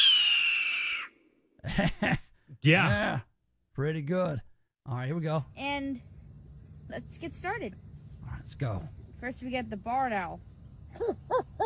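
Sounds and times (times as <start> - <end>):
red-tailed hawk screaming: 0.0 - 1.2
speech: 1.7 - 6.1, 6.9 - 11.6.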